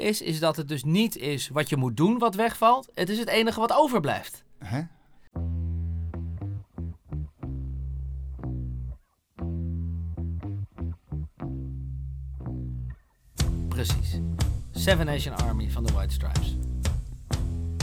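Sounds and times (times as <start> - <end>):
speech: 0.0 - 5.0, 14.8 - 16.6
distorted rock bass riff: 5.4 - 17.8.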